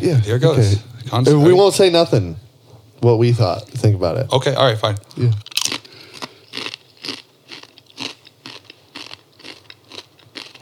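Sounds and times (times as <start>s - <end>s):
speech: 0.0s - 2.4s, 3.0s - 5.5s
person crunching and chewing a Vegemite potato chip: 5.0s - 10.6s.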